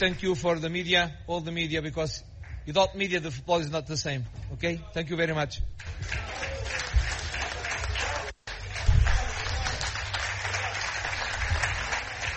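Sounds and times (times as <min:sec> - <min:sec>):
speech: 0:00.0 - 0:06.9
journalists applauding at a press conference: 0:05.8 - 0:12.3.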